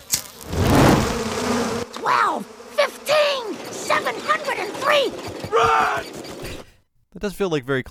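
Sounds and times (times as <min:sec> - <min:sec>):
swarm of bees buzzing: 0:00.0 - 0:06.4
excited voices shouting: 0:02.0 - 0:06.2
speech: 0:07.2 - 0:07.8.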